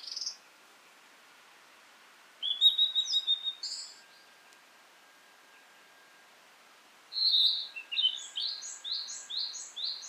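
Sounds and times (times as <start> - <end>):
blue-and-white flycatcher song: 0.0 - 0.4, 2.4 - 4.4, 7.1 - 10.0.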